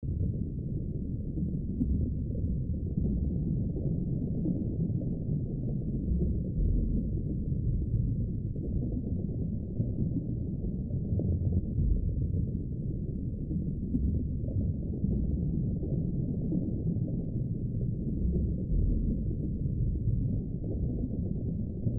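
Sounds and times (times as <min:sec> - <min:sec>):
water ambience from a SNES game rip: 0:00.0 - 0:21.9.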